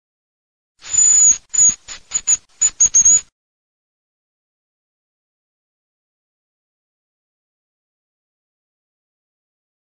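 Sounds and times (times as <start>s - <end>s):
francolin calling: 0.8s - 3.2s.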